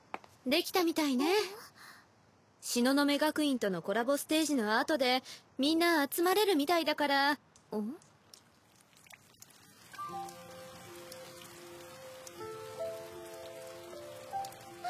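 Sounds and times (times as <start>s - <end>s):
speech: 0.4s - 1.8s, 2.6s - 8.1s
steady rain pattering on a surface: 7.5s - 14.8s.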